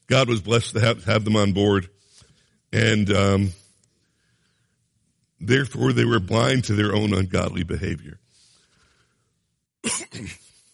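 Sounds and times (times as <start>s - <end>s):
speech: 0.1s - 2.0s, 2.7s - 3.6s, 5.4s - 8.2s, 9.8s - 10.5s
throat clearing by a preacher: 9.8s - 10.6s.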